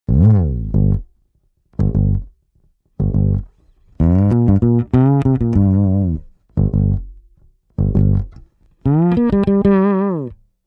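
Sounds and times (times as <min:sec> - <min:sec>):
bass recorded direct: 0:00.0 - 0:10.5.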